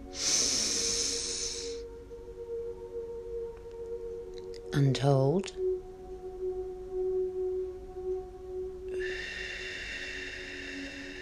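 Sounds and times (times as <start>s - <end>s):
slow deep breath during a guided breathing exercise: 0.0s - 1.9s, 8.9s - 11.1s
soft steady musical drone: 0.0s - 11.1s
speech: 4.8s - 5.6s.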